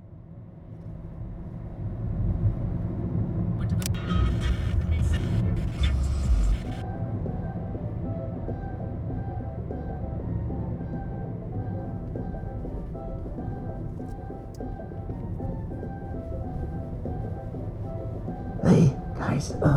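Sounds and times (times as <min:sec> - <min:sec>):
car engine rumbling while driving: 0:00.7 - 0:19.7.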